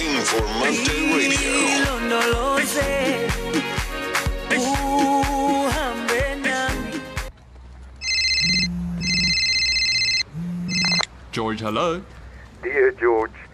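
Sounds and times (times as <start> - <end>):
upbeat music with a steady beat: 0.0 - 7.3
speech: 0.3 - 3.8, 11.4 - 13.4
phone ringtone of an incoming call: 8.0 - 11.1.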